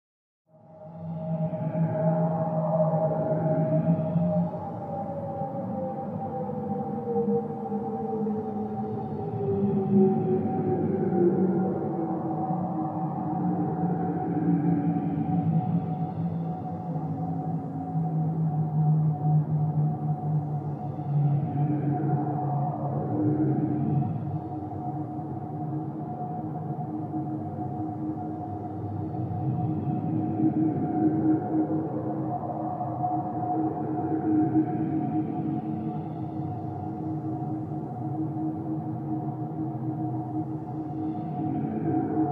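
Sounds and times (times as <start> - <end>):
ghostly ambience: 0.6 - 42.3.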